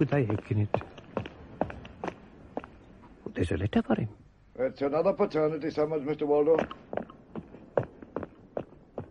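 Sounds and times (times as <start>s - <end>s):
speech: 0.0s - 1.0s, 3.4s - 7.2s
quick footsteps hurrying along cobbles and up steps: 0.0s - 3.2s, 6.4s - 9.0s.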